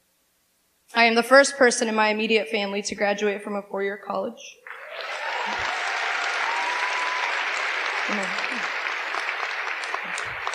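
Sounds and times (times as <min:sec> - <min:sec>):
speech: 0:00.9 - 0:05.7
large audience applause: 0:04.6 - 0:10.5
faint voices and whoops: 0:04.7 - 0:09.2.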